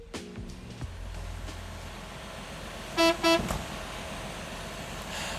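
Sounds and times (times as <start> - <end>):
sightseeing bus engine rumbling: 0.7 - 5.3
loud brassy bus horn blast: 2.9 - 3.6
rhythmic tooting of bus horn: 3.0 - 3.5.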